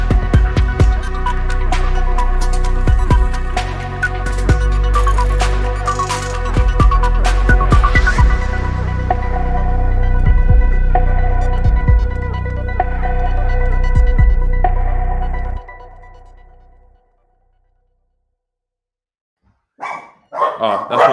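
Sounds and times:
steady musical passage: 0:00.0 - 0:17.0
dogs barking: 0:19.8 - 0:21.1.

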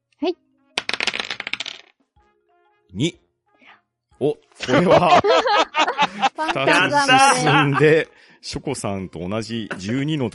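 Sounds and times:
dice tumbling and bouncing on a hard surface in a board game: 0:00.8 - 0:02.0
speech: 0:02.9 - 0:03.2, 0:04.2 - 0:10.3
laughter: 0:04.6 - 0:08.1, 0:09.7 - 0:10.1.

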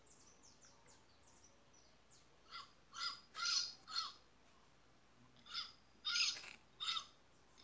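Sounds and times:
parrot squawking: 0:02.5 - 0:04.2, 0:05.4 - 0:07.1.

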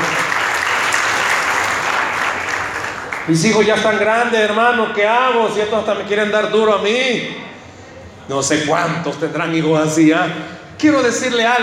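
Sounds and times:
audience applauding: 0:00.0 - 0:03.5
speech: 0:03.3 - 0:07.5, 0:08.3 - 0:11.6.

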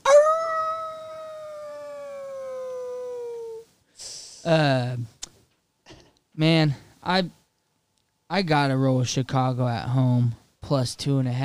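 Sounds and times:
single long mournful wolf howl: 0:00.0 - 0:03.6
speech: 0:04.4 - 0:05.2, 0:06.4 - 0:07.4, 0:08.3 - 0:11.4.

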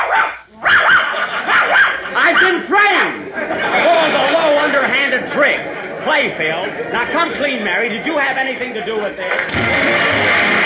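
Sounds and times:
large police dog barking: 0:00.0 - 0:02.6
laughter: 0:00.8 - 0:10.6
speech: 0:06.2 - 0:10.5.

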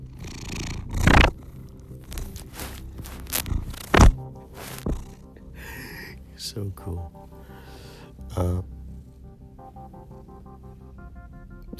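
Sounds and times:
cats purring: 0:00.0 - 0:11.7
thumps and rustling bumps on the microphone: 0:02.2 - 0:05.1
speech: 0:06.6 - 0:07.2, 0:08.4 - 0:08.7.

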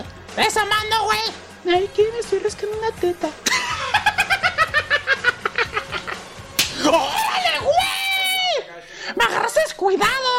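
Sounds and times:
speech: 0:00.4 - 0:03.6, 0:06.8 - 0:07.2, 0:09.1 - 0:10.3
laughter: 0:03.4 - 0:06.3
sharp loud slap to the face: 0:06.5 - 0:06.9
rising wailing yelp of pain: 0:06.8 - 0:08.6
people shouting excitedly: 0:06.8 - 0:08.7.

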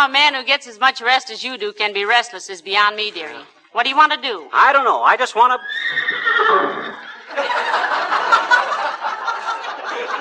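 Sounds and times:
speech: 0:00.0 - 0:08.5
horse neighing: 0:05.5 - 0:07.2
laughter: 0:06.7 - 0:10.2.

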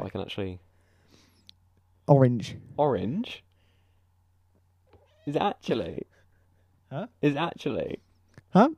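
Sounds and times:
faint steady hum: 0:00.0 - 0:08.7
speech: 0:00.1 - 0:00.7, 0:02.1 - 0:03.5, 0:05.3 - 0:06.1, 0:06.9 - 0:08.7
cat meowing: 0:05.0 - 0:05.4.

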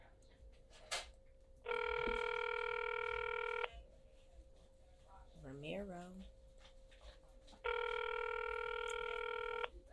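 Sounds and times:
faint steady hum: 0:00.0 - 0:09.9
ringback tone on an outgoing phone call: 0:01.7 - 0:03.7, 0:07.6 - 0:09.7.

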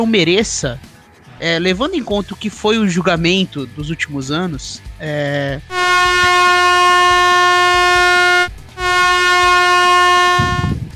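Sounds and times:
speech: 0:00.0 - 0:06.1
air horn blasts: 0:05.7 - 0:10.9.

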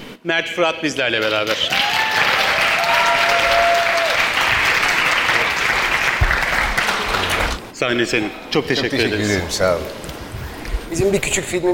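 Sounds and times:
speech: 0:00.2 - 0:02.1, 0:07.8 - 0:10.1, 0:10.9 - 0:11.7
large crowd applauding loudly: 0:01.2 - 0:07.6
whistles and cheers from a crowd: 0:01.7 - 0:04.5.

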